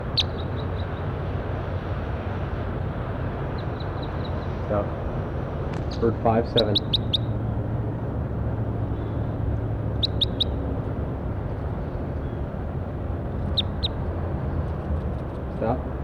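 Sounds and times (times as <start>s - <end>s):
steady wash of rumbling noise: 0.0s - 16.0s
speech: 4.7s - 5.0s, 5.9s - 7.0s
bird song recorded outdoors: 6.6s - 7.3s, 10.0s - 10.6s, 13.5s - 14.0s.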